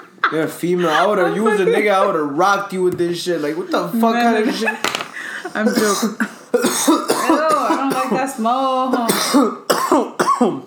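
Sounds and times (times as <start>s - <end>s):
laughter: 0.0s - 2.4s, 3.4s - 5.9s
speech: 0.3s - 10.6s
harsh raspy coughs: 5.6s - 8.2s, 8.9s - 10.6s.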